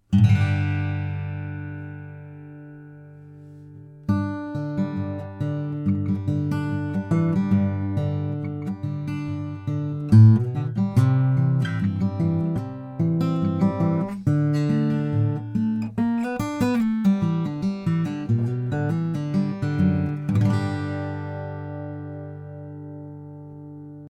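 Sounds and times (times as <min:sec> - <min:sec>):
large sound hole OM acoustic guitar: 0:00.0 - 0:24.1.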